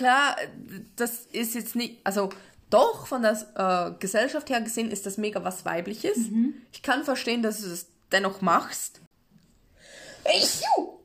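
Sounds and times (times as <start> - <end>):
speech: 0.0 - 9.0, 10.2 - 11.0
person sneezing: 10.1 - 11.0.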